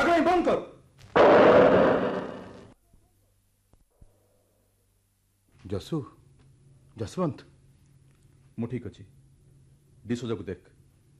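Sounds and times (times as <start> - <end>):
speech: 0.4 - 1.6, 5.7 - 6.2, 7.0 - 7.5, 8.6 - 9.2, 10.0 - 10.7
revolver gunshot: 1.2 - 2.7.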